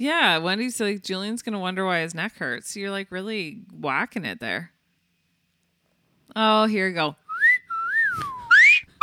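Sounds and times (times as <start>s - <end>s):
speech: 0.0s - 4.8s, 6.3s - 7.2s
person whistling a short clear melody: 7.3s - 9.0s.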